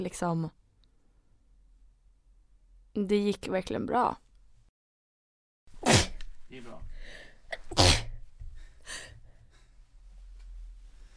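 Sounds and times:
speech: 0:00.0 - 0:00.6, 0:03.0 - 0:04.2
person sneezing: 0:05.8 - 0:06.2, 0:07.6 - 0:08.2.

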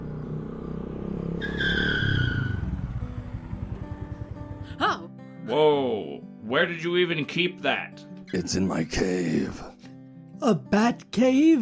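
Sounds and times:
motorcycle engine rumbling and idling: 0:00.0 - 0:04.8
motorcycle tire screech: 0:00.5 - 0:03.0
speech: 0:05.5 - 0:05.8, 0:06.5 - 0:09.7, 0:10.4 - 0:11.6.

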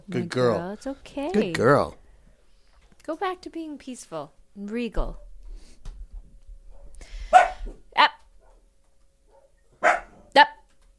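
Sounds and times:
speech: 0:00.1 - 0:02.0, 0:03.1 - 0:05.2, 0:10.4 - 0:10.6
dog barking at dogs outside: 0:06.7 - 0:07.8, 0:09.3 - 0:10.3.

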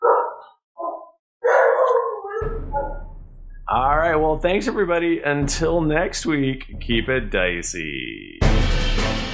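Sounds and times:
dogs barking at home: 0:00.0 - 0:03.1
speech: 0:03.7 - 0:09.2.

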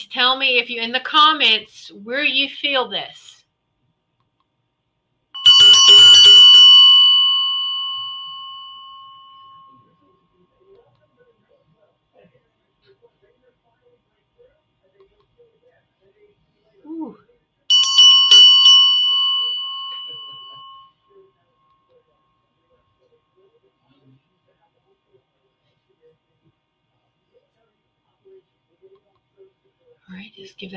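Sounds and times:
speech: 0:00.0 - 0:03.4, 0:30.1 - 0:30.7
Indian bell being struck and ringing: 0:05.4 - 0:09.9, 0:17.7 - 0:21.0.

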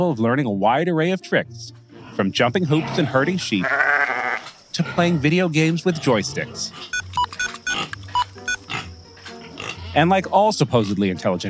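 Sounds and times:
speech: 0:00.0 - 0:03.9, 0:04.8 - 0:07.0, 0:10.0 - 0:11.4
pig grunting: 0:01.9 - 0:07.0, 0:08.7 - 0:10.0.

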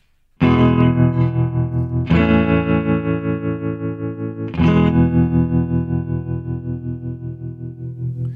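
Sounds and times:
Stratocaster electric guitar strumming chords with vibrato and reverb: 0:00.4 - 0:08.3.

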